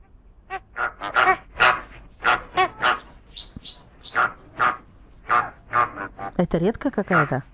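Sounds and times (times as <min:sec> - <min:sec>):
adult greater flamingos honking and gabbling: 0:00.5 - 0:03.1, 0:04.0 - 0:06.4
greater flamingo chick squeaky calls: 0:01.1 - 0:05.9
speech: 0:06.4 - 0:07.5.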